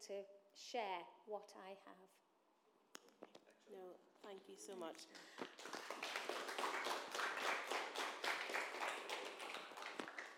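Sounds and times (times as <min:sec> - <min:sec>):
speech: 0:00.0 - 0:02.2, 0:03.2 - 0:05.8
audience clapping: 0:05.0 - 0:10.3.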